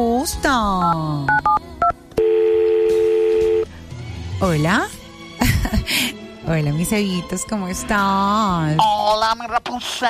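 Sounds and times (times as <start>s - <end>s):
speech: 0.0s - 1.4s, 4.4s - 5.0s, 5.8s - 10.0s
touch-tone beeps of a telephone number being dialed: 0.8s - 3.6s
long steady telephone tone: 2.2s - 3.7s.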